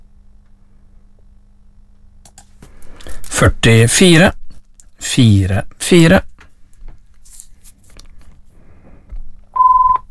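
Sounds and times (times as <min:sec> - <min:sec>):
speech: 0:03.4 - 0:04.4, 0:05.0 - 0:06.3
faint rustling and crunching: 0:06.3 - 0:09.4
telephone electronic ring tone: 0:09.6 - 0:10.0.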